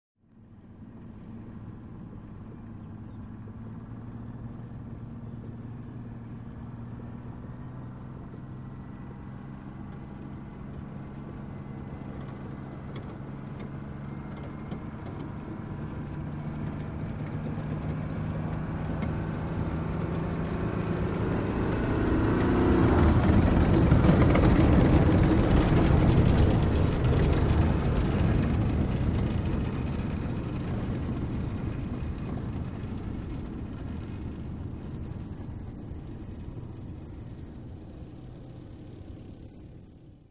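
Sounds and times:
tank passing by: 0.5s - 40.2s.

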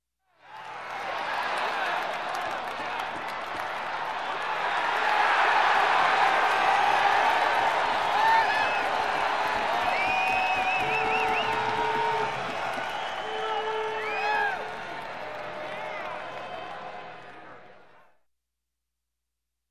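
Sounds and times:
crowd cheering at a game: 0.3s - 18.2s
crowd whistling at a game: 3.6s - 17.5s.

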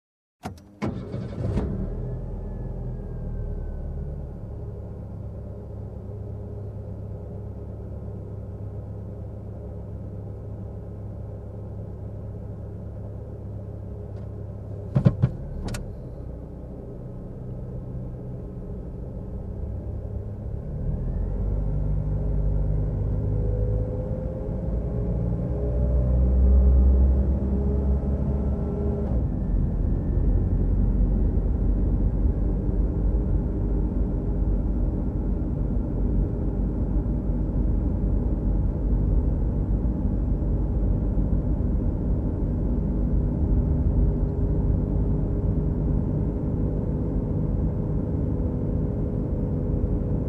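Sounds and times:
car engine starting and driving smoothly: 0.4s - 50.2s.

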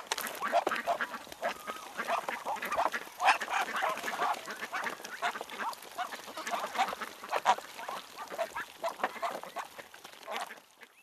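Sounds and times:
flock of ducks quacking: 0.1s - 11.0s.

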